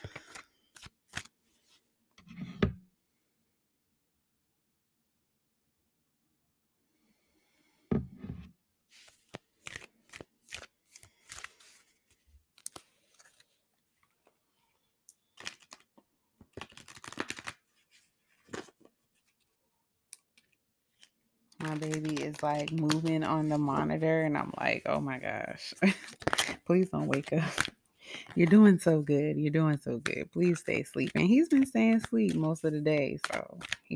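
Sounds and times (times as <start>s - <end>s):
deck of oracle cards being shuffled and a card pulled: 0.0s - 1.8s, 8.9s - 14.4s, 15.2s - 25.0s, 25.9s - 28.6s, 30.0s - 33.9s
speech: 21.6s - 27.7s, 28.4s - 33.9s.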